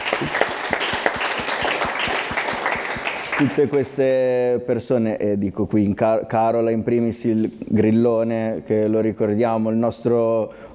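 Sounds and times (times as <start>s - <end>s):
crowd applauding with many hands clapping: 0.0s - 3.9s
speech: 0.2s - 0.5s, 3.4s - 10.7s.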